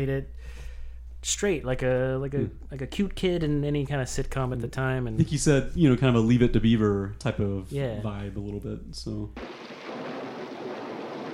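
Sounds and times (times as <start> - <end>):
speech: 0.0 - 0.6, 1.2 - 9.7
thunder rumbling: 9.4 - 11.3.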